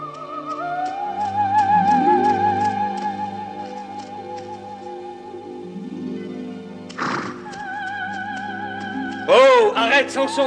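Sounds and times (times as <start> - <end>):
horse hooves clopping along a path: 0.0 - 10.4
orchestral music: 0.0 - 10.4
horse whinnying loudly: 6.9 - 7.8
speech: 10.1 - 10.4.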